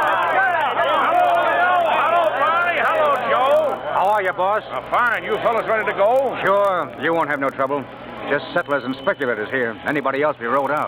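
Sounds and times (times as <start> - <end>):
crowd of henchmen cheering loudly: 0.0 - 4.2
speech: 4.2 - 10.8.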